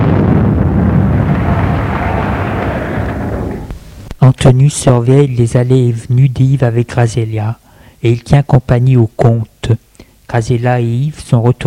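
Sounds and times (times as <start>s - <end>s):
grenades exploding: 0.0s - 4.1s
speech: 4.3s - 11.6s.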